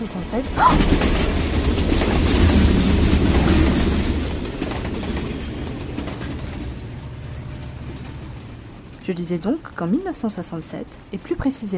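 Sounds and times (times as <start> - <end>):
speech: 0.0 - 1.8, 9.1 - 11.7
passing train wheels rattling and clacking over rails: 0.0 - 11.7.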